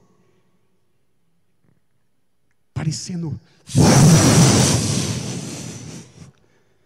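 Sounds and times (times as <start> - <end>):
speech: 2.8 - 4.9
deep rumble: 3.7 - 6.3
loud roaring rushing wind-like noise: 3.7 - 6.3.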